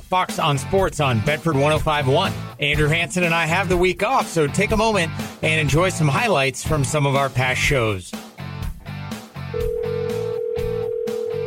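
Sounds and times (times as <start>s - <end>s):
speech: 0.1s - 8.3s
telephone ringing with a sustained electronic tone: 9.6s - 11.4s.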